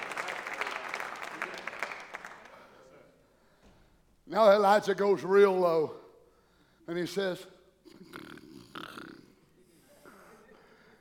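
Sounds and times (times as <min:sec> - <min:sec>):
speech: 0:04.3 - 0:06.0, 0:06.9 - 0:07.5
man imitating loud snoring: 0:07.9 - 0:09.5.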